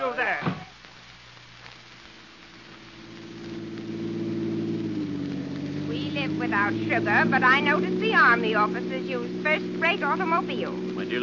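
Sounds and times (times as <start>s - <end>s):
big car engine droning: 2.5s - 11.2s
speech: 6.5s - 11.2s.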